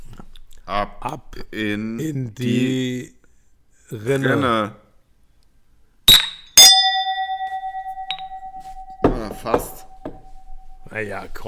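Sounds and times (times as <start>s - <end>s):
speech: 0.7s - 3.2s, 3.9s - 4.8s, 9.4s - 9.8s, 10.9s - 11.4s
drinking glasses clinking in a toast: 6.1s - 10.6s.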